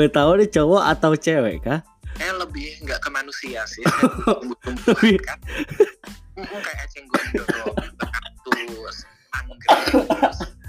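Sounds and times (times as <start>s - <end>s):
speech: 0.0s - 7.8s
laughter: 3.8s - 9.0s, 9.6s - 10.6s
harsh coughs: 3.9s - 8.9s, 9.6s - 10.6s.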